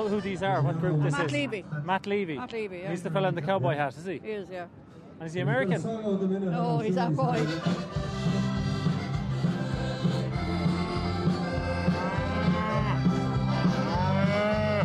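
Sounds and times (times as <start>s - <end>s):
speech: 0.0s - 8.0s
steady hum of a crowded outdoor space: 0.0s - 14.8s
cattle in pens along a main street mooing: 11.6s - 14.8s.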